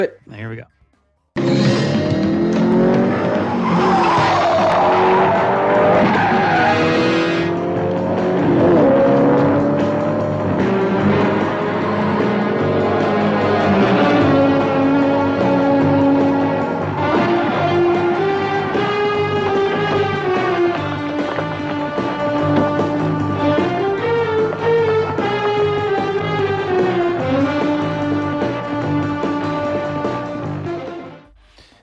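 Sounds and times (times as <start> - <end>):
speech: 0.0 - 0.8
instrumental theme tune: 0.0 - 31.4
squealing skidding tones: 1.4 - 7.6, 10.6 - 28.4
car engine revving in theme music: 1.4 - 31.1.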